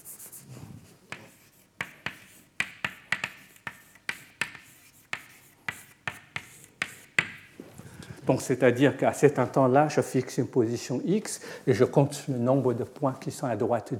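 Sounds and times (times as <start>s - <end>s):
writing on a board: 1.0s - 7.5s
speech: 8.3s - 13.9s.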